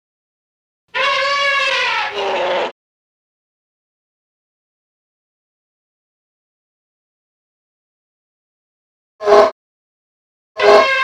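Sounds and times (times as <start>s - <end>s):
elephant trumpeting: 0.9s - 2.7s, 10.6s - 11.0s.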